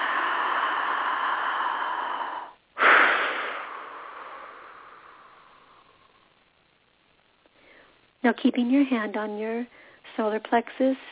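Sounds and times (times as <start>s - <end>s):
deep slow breath taken together with others: 0.0s - 6.4s, 7.5s - 8.0s, 9.7s - 10.1s
speech: 8.3s - 11.1s.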